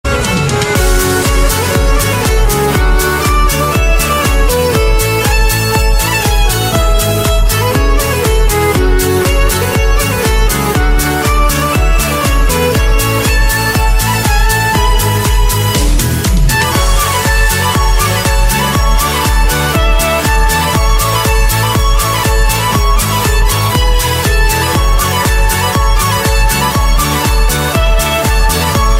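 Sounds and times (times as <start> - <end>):
emotional classical violin music: 0.0 - 28.9.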